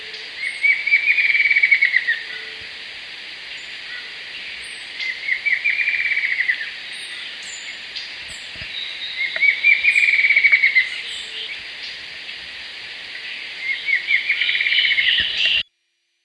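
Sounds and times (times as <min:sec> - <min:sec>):
background hiss: 0:00.0 - 0:15.6
bird trilling: 0:00.4 - 0:02.6, 0:03.6 - 0:12.0, 0:13.3 - 0:15.6.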